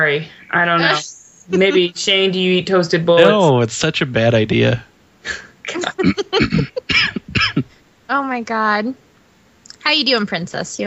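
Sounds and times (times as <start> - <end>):
speech: 0.0 - 7.2, 8.1 - 9.0, 9.8 - 10.8
laughter: 0.8 - 2.0, 3.2 - 3.7, 5.6 - 7.4
person with a sore throat and congestion coughing: 1.6 - 1.8, 5.3 - 7.8.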